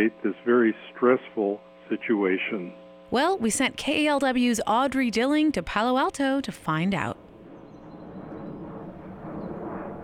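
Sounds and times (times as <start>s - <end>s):
speech: 0.0s - 7.2s
Southwest Boeing 737 airliner flying overhead in Palo Alto: 6.4s - 10.0s.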